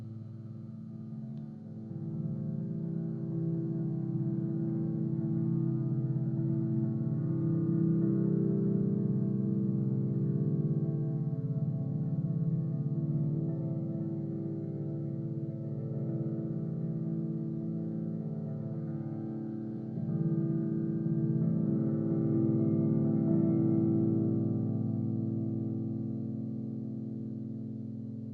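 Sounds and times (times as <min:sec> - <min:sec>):
amped overdriven electric pentatonic melody, murmuring and oceanic: 0:01.2 - 0:28.3.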